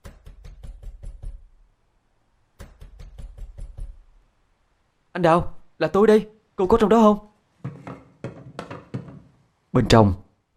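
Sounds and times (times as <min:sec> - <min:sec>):
fist knocking on a room door: 0:00.0 - 0:01.5, 0:02.6 - 0:04.1, 0:07.6 - 0:09.3
speech: 0:05.2 - 0:07.8, 0:09.8 - 0:10.2.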